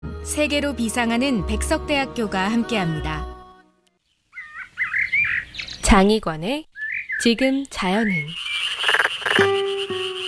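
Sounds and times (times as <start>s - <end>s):
speech: 0.2s - 3.3s, 5.9s - 8.5s
black-spotted pond frog giving rattling croaks: 4.3s - 6.0s, 6.8s - 10.2s.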